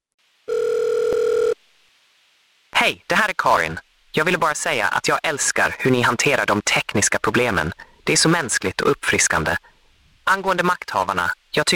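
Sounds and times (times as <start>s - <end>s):
telephone line beep of a listener's call connecting: 0.5s - 1.6s
speech: 2.8s - 9.7s, 10.3s - 11.7s.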